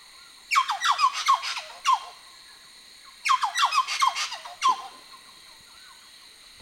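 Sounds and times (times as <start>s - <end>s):
white-naped friarbird raucous grating calls: 0.5s - 2.2s, 3.3s - 5.0s.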